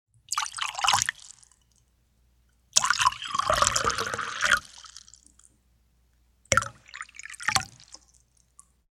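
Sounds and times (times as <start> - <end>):
tea pouring short sharp: 0.3 - 1.8, 2.8 - 5.4, 6.5 - 8.6.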